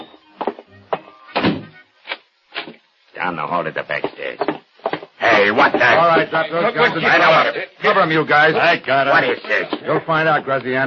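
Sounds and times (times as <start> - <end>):
door shutting with a solid thunk: 1.4 - 1.7
speech: 3.2 - 4.6, 5.2 - 10.8.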